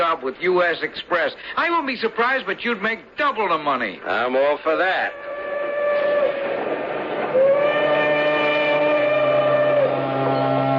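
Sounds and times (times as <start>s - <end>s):
speech: 0.2s - 5.3s
steam train whistle blasts: 5.1s - 10.7s.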